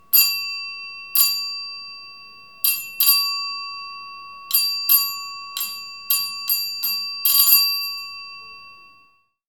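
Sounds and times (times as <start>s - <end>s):
electric school bell ringing: 0.0s - 9.4s.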